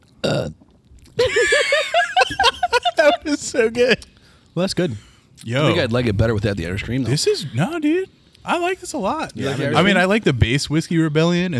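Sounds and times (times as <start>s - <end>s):
loud belch after chugging beer: 0.2s - 0.7s
laughter: 1.2s - 4.0s
speech: 3.5s - 11.5s.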